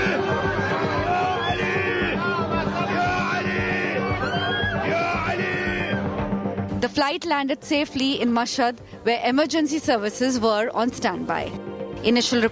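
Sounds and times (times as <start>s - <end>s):
panicked plane passengers screaming and crying out: 0.0s - 6.5s
speech: 7.0s - 12.4s.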